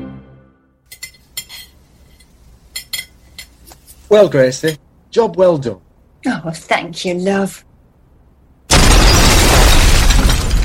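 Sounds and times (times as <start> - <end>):
speech: 4.1 - 7.7
explosion: 8.7 - 10.6
roaring crackling blast with deep rumble: 8.7 - 10.6.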